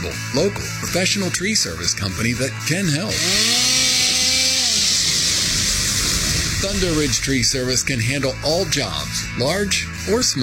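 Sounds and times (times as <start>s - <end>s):
speech: 0.0s - 3.8s, 6.6s - 10.4s
old chainsaw motor running roughly and failing to start: 3.1s - 7.2s
harsh noise: 4.8s - 10.2s.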